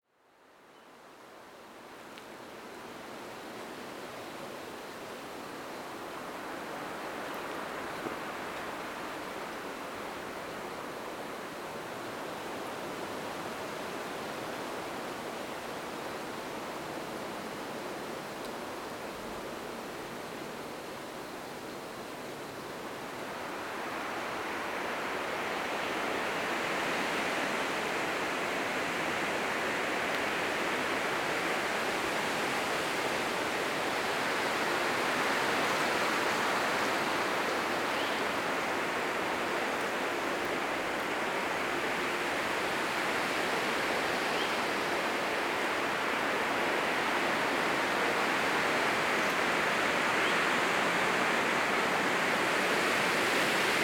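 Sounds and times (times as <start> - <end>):
wind through pine trees in a forest in Manteo NC: 0.0 - 53.8.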